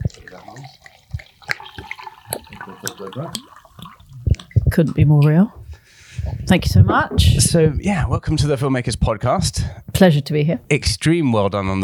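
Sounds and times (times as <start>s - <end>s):
water pouring into a glass: 0.0s - 5.2s
speech: 2.8s - 3.6s, 4.8s - 5.6s, 6.5s - 11.8s.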